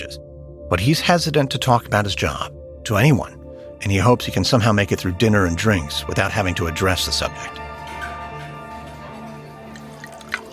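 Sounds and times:
speech: 0:00.0 - 0:07.6
waiter pouring wine into a glass: 0:09.1 - 0:10.5.

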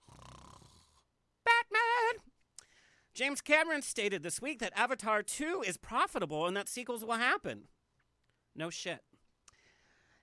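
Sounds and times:
person imitating snoring: 0:00.0 - 0:01.1
speech: 0:03.2 - 0:07.8, 0:08.6 - 0:09.1.

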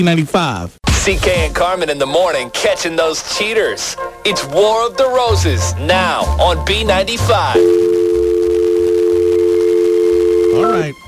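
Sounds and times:
speech: 0:00.0 - 0:07.8
telephone tone while placing a call: 0:07.4 - 0:10.8.

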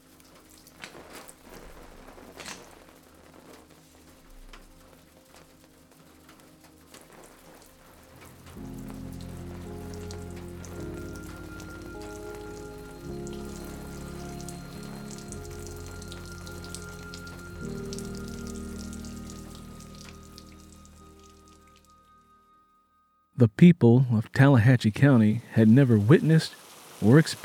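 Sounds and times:
water dripping from leaking roof into puddles: 0:00.0 - 0:22.2, 0:25.5 - 0:27.4
low sustained musical drone: 0:08.1 - 0:22.8
speech: 0:23.4 - 0:27.4.

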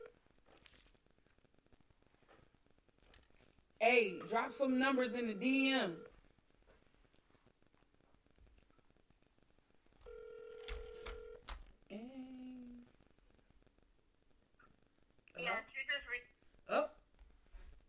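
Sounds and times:
speech: 0:03.8 - 0:06.1
phone dial tone: 0:05.3 - 0:06.1, 0:10.0 - 0:11.6.

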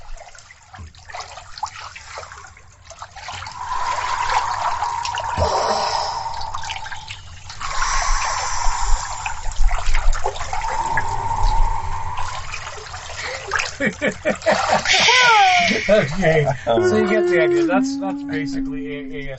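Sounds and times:
water splashing against the microphone: 0:00.0 - 0:16.4
laughter: 0:13.5 - 0:18.8
speech: 0:15.9 - 0:19.3.

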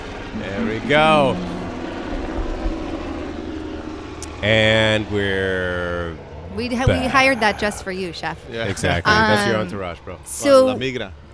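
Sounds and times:
helicopter engine and rotor roar overhead: 0:00.0 - 0:11.3
speech: 0:00.4 - 0:01.5, 0:04.4 - 0:11.3
laughter: 0:00.4 - 0:01.6, 0:06.6 - 0:11.3.

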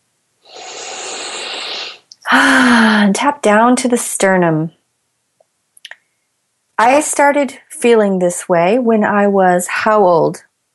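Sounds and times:
big deep breath during a tapping relaxation exercise: 0:00.5 - 0:03.1
speech: 0:02.3 - 0:04.8, 0:06.8 - 0:10.5.

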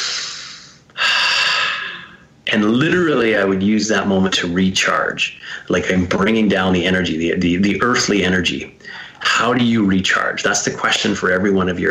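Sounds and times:
airy exhale during box breathing: 0:00.0 - 0:02.2
speech: 0:02.5 - 0:11.9.

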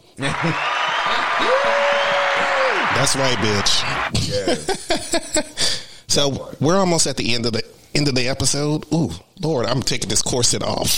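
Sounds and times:
canned applause effect triggered by an applause button: 0:00.1 - 0:04.1
speech: 0:00.2 - 0:00.7, 0:01.4 - 0:01.8, 0:03.0 - 0:10.9
voices cheering: 0:00.2 - 0:04.1.

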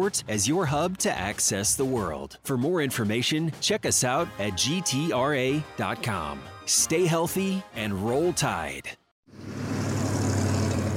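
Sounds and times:
speech: 0:00.0 - 0:09.0
dense steady roar of rush hour road traffic: 0:09.3 - 0:10.9.

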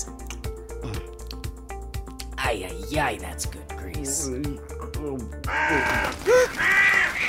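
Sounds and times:
speech: 0:02.5 - 0:07.2
bird cawing harshly: 0:05.4 - 0:07.2.

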